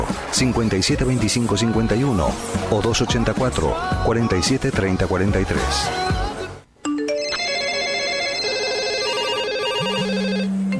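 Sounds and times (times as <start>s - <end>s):
speech: 0.3s - 6.2s
electronic telephone ring with synthetic tones: 7.0s - 10.7s.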